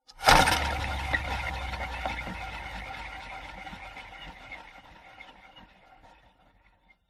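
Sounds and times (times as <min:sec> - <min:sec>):
wooden spinning wheel spinning and stopping: 0:00.1 - 0:07.0.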